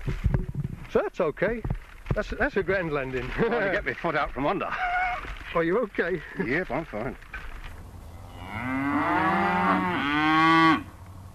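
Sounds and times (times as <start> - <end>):
speech: 0.9 - 7.3
cows mooing in a field: 8.0 - 10.9.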